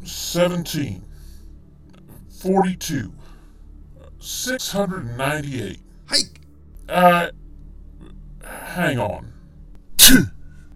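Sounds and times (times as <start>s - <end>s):
speech: 0.0s - 1.1s, 2.4s - 3.2s, 4.2s - 7.4s, 8.5s - 9.4s, 10.1s - 10.4s
sharp explosive sneeze: 10.0s - 10.3s.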